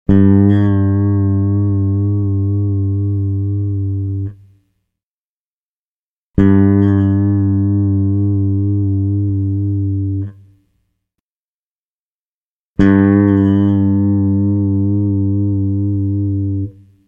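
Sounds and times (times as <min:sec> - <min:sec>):
rock bass guitar: 0:00.1 - 0:04.3, 0:06.4 - 0:10.3, 0:12.8 - 0:16.7.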